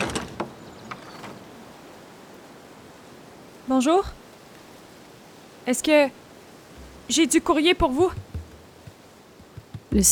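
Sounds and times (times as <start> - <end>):
heavy doors creaking and rumbling as pushed open: 0.0 - 1.4
speech: 3.7 - 4.2, 5.6 - 6.2, 7.1 - 8.2.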